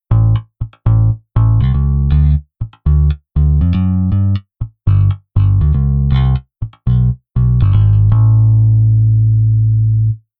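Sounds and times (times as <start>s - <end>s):
bass: 0.0s - 10.3s.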